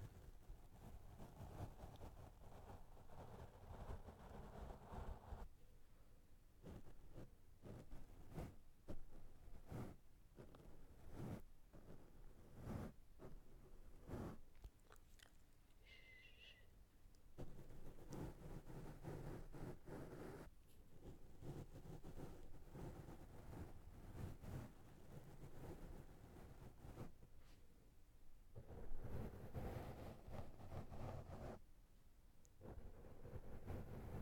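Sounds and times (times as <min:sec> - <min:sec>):
brushes dragged and rubbed across a microphone: 0:00.0 - 0:05.5, 0:06.6 - 0:16.7, 0:17.3 - 0:27.6, 0:28.6 - 0:31.6, 0:32.6 - 0:34.1
faint high tone: 0:15.8 - 0:16.8.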